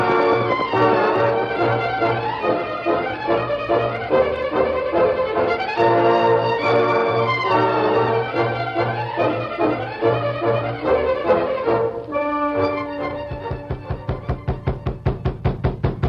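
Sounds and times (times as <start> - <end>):
dramatic music: 0.0 - 16.0
knocking on a wooden door: 13.2 - 16.0.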